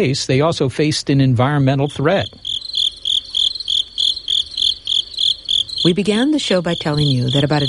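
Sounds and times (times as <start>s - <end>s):
speech: 0.0s - 2.5s, 5.8s - 7.6s
crickets chirping in Hawaii: 1.6s - 7.6s.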